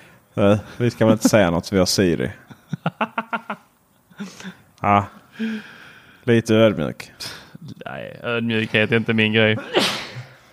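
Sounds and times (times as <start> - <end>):
speech: 0.4 - 3.4, 4.2 - 10.0
laughter: 0.9 - 1.6, 2.4 - 4.5
person sneezing: 9.6 - 10.4.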